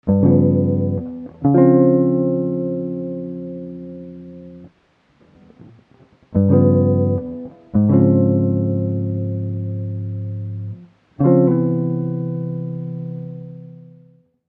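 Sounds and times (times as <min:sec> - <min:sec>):
guitar: 0:00.0 - 0:14.4.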